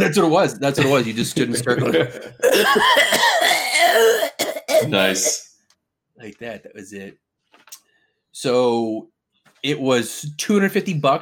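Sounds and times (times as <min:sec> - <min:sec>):
laughter: 0:00.0 - 0:03.1
speech: 0:00.1 - 0:05.4, 0:06.2 - 0:07.2, 0:08.4 - 0:11.2
drawn-out raspy cough: 0:02.4 - 0:05.4.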